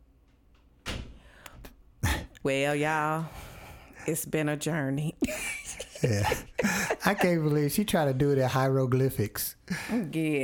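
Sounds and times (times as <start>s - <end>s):
door shutting with a solid thud: 0.8s - 1.2s
speech: 2.4s - 3.4s, 4.0s - 10.4s
laughter: 5.3s - 7.7s.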